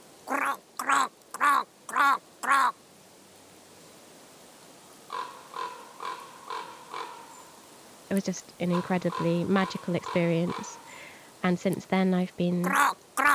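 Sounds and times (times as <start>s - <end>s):
raven croaking: 0.2s - 2.8s, 5.1s - 7.4s, 8.6s - 11.1s, 12.6s - 13.3s
speech: 8.1s - 10.8s, 11.4s - 13.0s.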